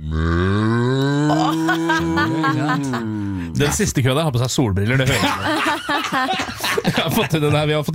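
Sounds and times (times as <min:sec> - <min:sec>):
person imitating a desperate cow mooing: 0:00.0 - 0:03.6
speech: 0:00.1 - 0:00.4, 0:02.0 - 0:07.9
laughter: 0:01.3 - 0:03.5, 0:04.9 - 0:07.8.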